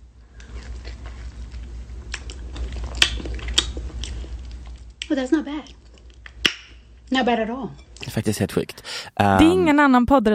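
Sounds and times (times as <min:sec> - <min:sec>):
low steady hum: 0:00.0 - 0:10.3
moist chewing and lip smacking while eating: 0:00.3 - 0:06.8
crunchy snaps while chewing: 0:00.3 - 0:06.9
speech: 0:05.1 - 0:05.8, 0:07.1 - 0:10.3.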